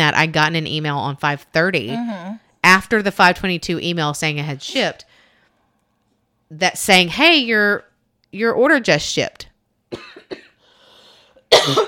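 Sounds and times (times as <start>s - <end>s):
speech: 0.1s - 5.1s, 6.5s - 10.4s, 11.6s - 11.8s
faint breathy noise: 5.0s - 5.7s, 10.6s - 11.5s
person coughing: 9.9s - 10.6s, 11.5s - 11.8s
small throat sound: 11.5s - 11.8s.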